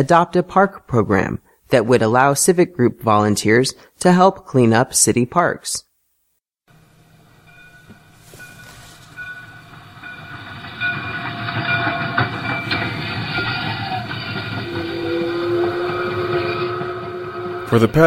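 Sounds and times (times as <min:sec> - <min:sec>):
speech: 0:00.0 - 0:05.9, 0:17.7 - 0:18.0
small train rumbling and rattling on tracks: 0:07.2 - 0:18.0
thin metallic squeal: 0:07.4 - 0:18.0.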